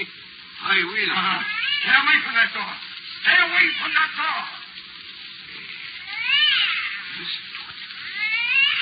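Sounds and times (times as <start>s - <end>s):
speech: 0.0s - 4.6s, 7.2s - 7.5s
cat meowing in a drawn-out wavering wail: 1.2s - 2.2s, 3.4s - 4.2s, 6.0s - 7.4s, 8.0s - 8.8s.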